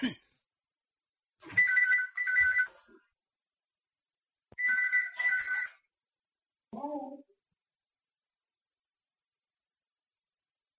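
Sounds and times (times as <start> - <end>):
phone ringtone ringing: 1.5 - 2.7, 4.6 - 5.9.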